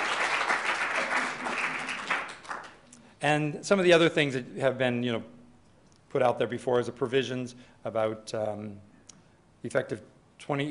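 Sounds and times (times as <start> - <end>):
audience applause: 0.0 - 2.8
speech: 3.2 - 5.4, 6.1 - 8.9, 9.6 - 10.6.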